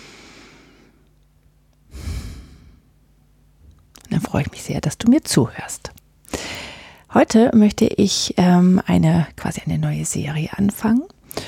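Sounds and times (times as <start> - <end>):
deep breath in and out: 0.0 - 1.0, 1.9 - 3.0, 6.3 - 7.0
speech: 4.3 - 6.0, 7.1 - 11.4.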